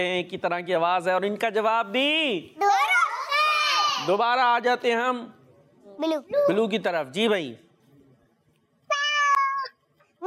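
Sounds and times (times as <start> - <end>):
speech: 0.0 - 2.8, 4.0 - 5.4, 6.0 - 7.6
cat meowing: 8.9 - 9.7.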